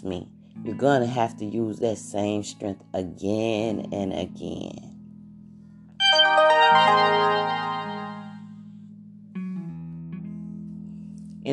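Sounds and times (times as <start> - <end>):
speech: 0.0 - 4.9
bright ringing phone alert: 6.0 - 8.4
softer phone chime: 6.0 - 8.4.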